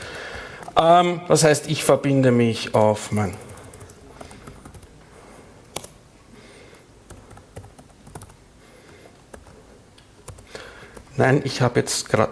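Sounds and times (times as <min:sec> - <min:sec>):
speech: 0:00.8 - 0:03.5, 0:11.2 - 0:12.3
typing on a computer keyboard: 0:03.2 - 0:04.9, 0:05.7 - 0:06.0, 0:07.1 - 0:09.6, 0:10.2 - 0:11.1.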